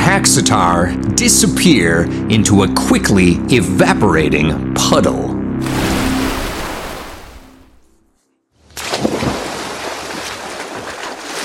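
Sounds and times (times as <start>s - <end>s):
speech: 0.2s - 5.3s
water churning and splashing as someone swims laps in a backyard pool: 5.6s - 7.8s, 8.8s - 11.4s.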